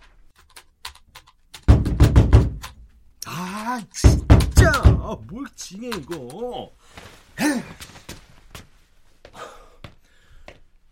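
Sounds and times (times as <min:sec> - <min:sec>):
forceful knocks on a front door: 0:01.7 - 0:02.7, 0:04.0 - 0:05.1
person calling out with a rising-falling tone: 0:03.2 - 0:06.8
speech: 0:03.8 - 0:07.9.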